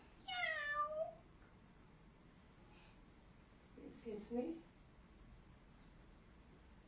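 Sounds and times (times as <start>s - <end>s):
cat meowing: 0.3s - 1.2s
speech: 4.0s - 4.7s.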